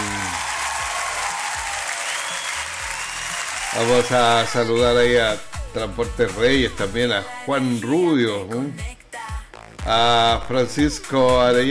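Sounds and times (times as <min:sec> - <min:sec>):
crowd applauding: 0:00.0 - 0:04.8
speech: 0:03.8 - 0:09.0, 0:09.8 - 0:11.6.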